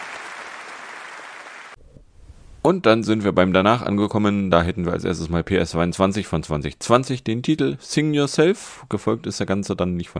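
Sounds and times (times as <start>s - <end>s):
audience applause after a talk: 0.0s - 1.8s
speech: 2.6s - 10.1s.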